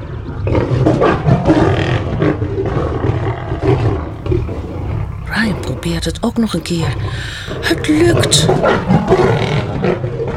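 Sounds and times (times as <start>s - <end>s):
two lions roaring together in a cave: 0.0s - 6.0s, 6.6s - 10.3s
speech: 5.9s - 10.1s.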